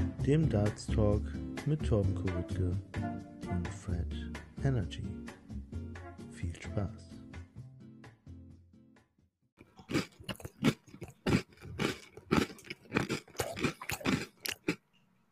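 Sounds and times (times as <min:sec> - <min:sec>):
speech: 0:00.3 - 0:05.4, 0:06.4 - 0:07.1
chewing crunchy chocolate chips: 0:09.6 - 0:14.8.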